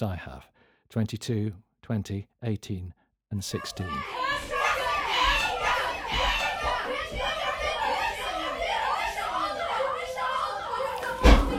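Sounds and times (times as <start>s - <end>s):
speech: 0.0s - 4.5s
children chattering, shouting and laughing in a busy room: 3.6s - 11.5s
door slamming: 11.2s - 11.5s.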